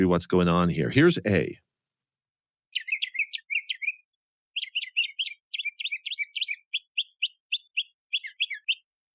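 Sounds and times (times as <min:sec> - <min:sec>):
speech: 0:00.0 - 0:01.6
older male mockingbird singing: 0:02.7 - 0:09.1.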